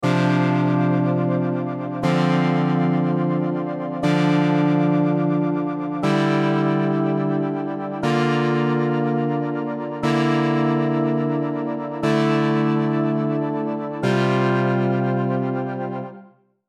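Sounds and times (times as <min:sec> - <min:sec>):
chords: 0:00.0 - 0:16.2.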